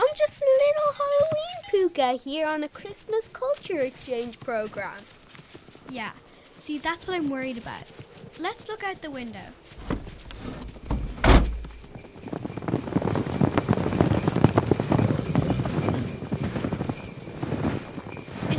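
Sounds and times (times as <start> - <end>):
hooves of a herd of excited baby reindeer galloping: 0.0 - 18.5
speech: 2.0 - 5.2, 5.9 - 9.9
heavy thump: 9.8 - 11.9.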